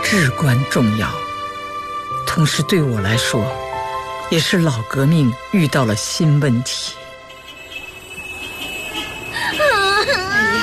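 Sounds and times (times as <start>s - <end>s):
speech: 0.1s - 1.2s, 2.4s - 3.6s, 4.3s - 7.0s
child crying in a home: 9.6s - 10.6s.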